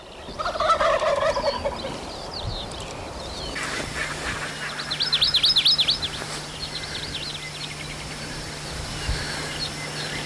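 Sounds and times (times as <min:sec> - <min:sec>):
faint steady hum: 0:00.0 - 0:10.2
wild turkeys gobbling: 0:00.4 - 0:02.0, 0:03.6 - 0:05.3.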